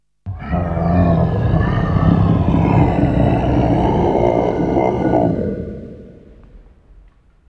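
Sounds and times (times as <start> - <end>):
Halloween monster sound effect: 0.3 - 6.7.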